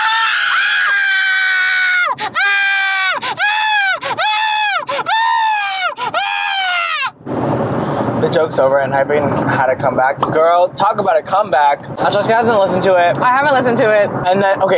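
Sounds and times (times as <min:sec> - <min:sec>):
person screaming in a long high-pitched shriek: 0:00.0 - 0:07.1
repeated wailing bursts: 0:00.0 - 0:07.2
speech: 0:02.2 - 0:02.6, 0:08.3 - 0:14.7.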